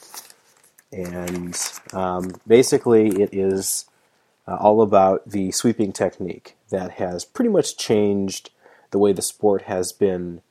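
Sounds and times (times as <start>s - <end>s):
newspaper pages rustling: 0.0s - 3.7s
speech: 0.9s - 3.9s, 4.5s - 10.4s.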